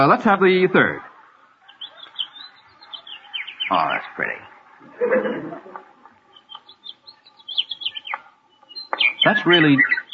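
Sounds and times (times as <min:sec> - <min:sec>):
speech: 0:00.0 - 0:01.1, 0:03.7 - 0:05.8, 0:09.2 - 0:10.0
laughter: 0:00.0 - 0:06.5
linnet song: 0:00.0 - 0:10.1
meadowlark song: 0:00.6 - 0:04.6, 0:06.2 - 0:10.1.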